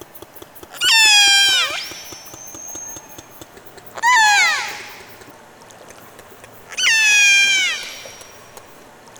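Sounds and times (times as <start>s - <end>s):
resident orca call: 0.8s - 3.1s, 4.0s - 5.3s, 6.7s - 8.7s.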